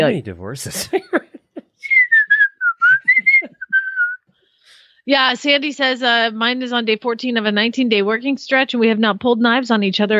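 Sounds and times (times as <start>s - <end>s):
speech: 0.0s - 1.2s, 5.1s - 10.1s
person whistling a short wandering tune: 1.8s - 4.3s.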